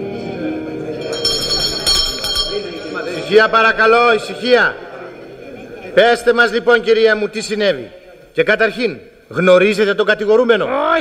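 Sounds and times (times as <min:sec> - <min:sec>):
murmur of voices: 0:00.0 - 0:11.0
judge's small hand bell ringing during a court hearing: 0:00.9 - 0:04.0
speech: 0:03.3 - 0:04.8, 0:06.0 - 0:11.0.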